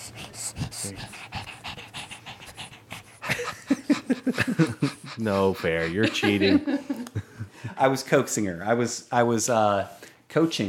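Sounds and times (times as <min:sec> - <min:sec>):
female dog panting into a microphone: 0:00.0 - 0:06.8
laughter: 0:03.2 - 0:07.9
speech: 0:04.2 - 0:06.9, 0:07.8 - 0:10.6.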